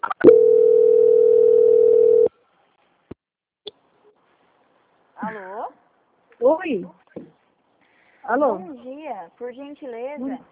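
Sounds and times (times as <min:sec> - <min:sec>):
telephone call transfer tone: 0:00.2 - 0:02.3
speech: 0:06.6 - 0:07.0, 0:08.3 - 0:10.5.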